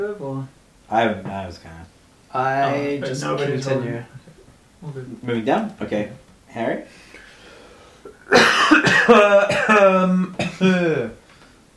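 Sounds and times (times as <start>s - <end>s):
speech: 0.0s - 4.2s, 4.8s - 7.0s, 8.3s - 11.2s
person coughing raspily: 8.3s - 11.1s.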